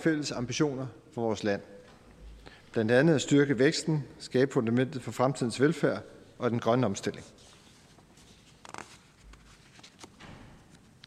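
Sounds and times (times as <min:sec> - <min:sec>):
speech: 0:00.0 - 0:01.8, 0:02.8 - 0:07.4
papers being shuffled: 0:07.4 - 0:11.0.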